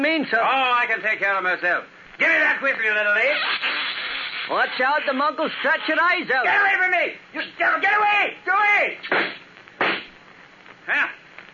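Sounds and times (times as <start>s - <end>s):
faint steady hiss: 0.0s - 11.5s
speech: 0.2s - 3.7s, 4.5s - 9.4s, 10.9s - 11.2s
gunshot: 9.0s - 10.2s.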